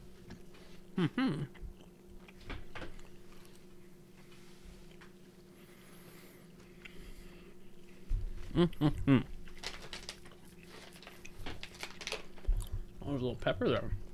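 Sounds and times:
person chewing beef jerky: 0.0s - 13.0s
speech: 1.0s - 1.6s, 8.6s - 9.4s, 13.1s - 14.0s.

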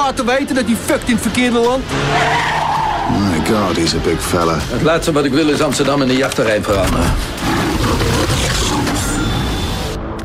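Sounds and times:
speech: 0.1s - 8.6s
lion roaring in a film trailer: 6.8s - 9.2s.

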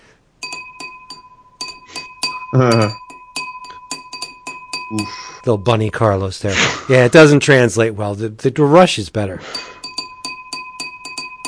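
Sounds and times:
bright glass clinks tapped in a tune-like pattern: 0.4s - 5.5s, 9.5s - 11.4s
speech: 2.5s - 3.0s, 4.9s - 9.7s.

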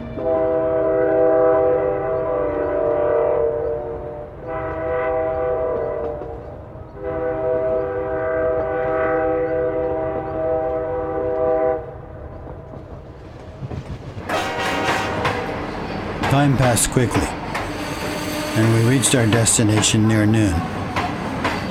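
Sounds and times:
train horn blasts: 0.0s - 12.1s, 14.3s - 15.7s, 17.1s - 19.4s
train passing on railway tracks: 0.0s - 21.6s
sharp high-pitched squeal: 15.4s - 20.8s
speech: 16.4s - 17.4s, 18.6s - 20.8s.

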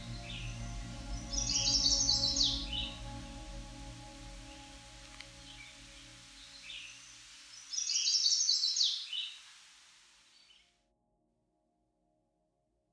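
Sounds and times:
Chestnut-sided Warbler song: 0.0s - 9.5s.

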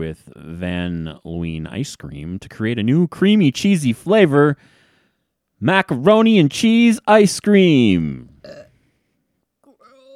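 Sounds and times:
speech: 0.0s - 4.8s, 5.6s - 8.6s
voice making a mock retching noise like a burp: 8.2s - 8.8s, 9.6s - 10.1s.

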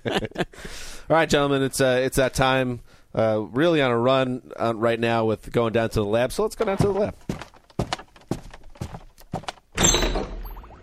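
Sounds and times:
speech: 0.0s - 0.5s, 1.1s - 7.4s
short hollow thumps: 6.6s - 10.7s.

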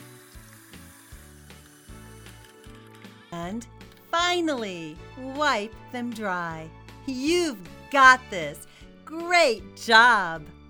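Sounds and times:
running tap water rinsing hands under a faucet: 0.0s - 2.3s
speech: 3.3s - 10.6s.

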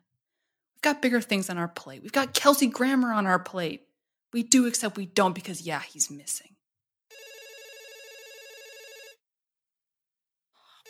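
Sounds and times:
speech: 0.8s - 6.6s
electronic telephone ringing: 7.1s - 9.2s.

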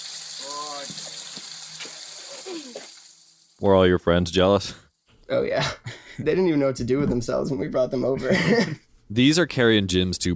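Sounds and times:
cold water spraying from a hose onto an elephant: 0.0s - 3.7s
speech: 3.6s - 10.3s
laughter: 8.1s - 8.8s.

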